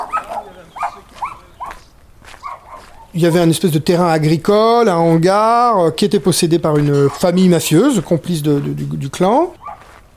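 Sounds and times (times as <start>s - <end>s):
dogs barking: 0.0s - 3.2s, 6.8s - 7.4s, 9.5s - 10.0s
faint outdoor noise: 0.0s - 10.1s
speech: 3.2s - 9.6s.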